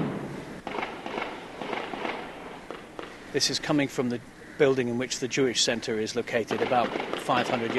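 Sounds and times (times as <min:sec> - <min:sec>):
distant gunfire echoing across rooftops: 0:00.0 - 0:03.2, 0:06.5 - 0:07.7
outdoor noise: 0:00.0 - 0:07.7
speech: 0:03.3 - 0:07.7.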